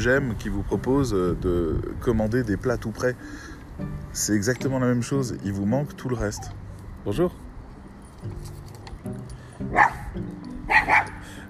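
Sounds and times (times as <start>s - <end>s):
speech: 0.0s - 7.4s, 8.2s - 10.3s
dog barking sharply at a boy: 9.7s - 11.2s.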